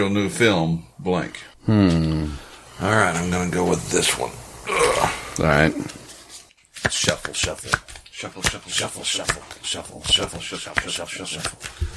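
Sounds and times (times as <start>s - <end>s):
speech: 0.0s - 4.4s, 5.0s - 6.0s, 6.8s - 11.9s
deck of cards being shuffled: 5.8s - 11.9s.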